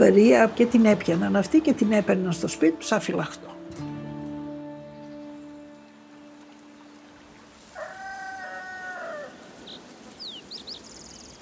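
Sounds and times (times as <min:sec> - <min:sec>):
speech: 0:00.0 - 0:03.6
steady rain-like noise: 0:05.6 - 0:11.4
rooster crowing: 0:05.8 - 0:11.4.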